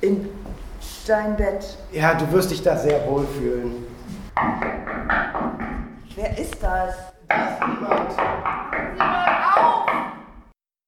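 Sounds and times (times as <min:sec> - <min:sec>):
speech: 0:00.0 - 0:00.4, 0:01.0 - 0:04.6, 0:06.3 - 0:08.3
firm knocking on a door: 0:04.4 - 0:06.0, 0:07.3 - 0:10.5.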